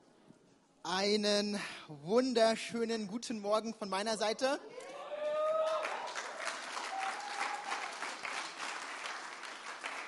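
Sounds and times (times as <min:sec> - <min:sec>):
speech: 0:00.8 - 0:05.0
crowd cheering: 0:04.8 - 0:10.0
audience clapping: 0:05.3 - 0:10.0.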